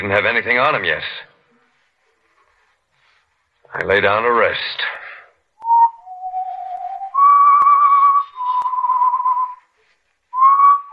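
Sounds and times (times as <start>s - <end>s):
speech: 0.0s - 1.3s, 3.7s - 5.0s
person whistling a slow simple tune: 5.6s - 9.7s, 10.3s - 10.9s.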